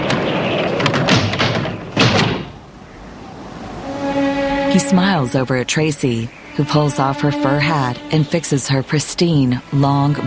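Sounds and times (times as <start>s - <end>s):
doors banging and rattling in wind: 0.0s - 2.7s
speech: 4.7s - 10.2s.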